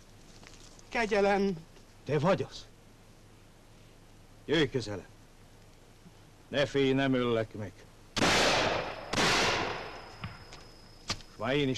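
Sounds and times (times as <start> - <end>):
speech: 0.9 - 2.7, 4.5 - 5.1, 6.5 - 7.9, 11.4 - 11.7
hunters' gunshots with rolling echo: 8.2 - 10.1.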